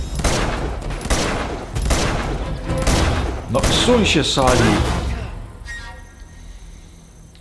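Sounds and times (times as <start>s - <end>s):
gunfire in bursts of loud sharp shots: 0.1s - 5.1s
speech: 3.5s - 5.0s.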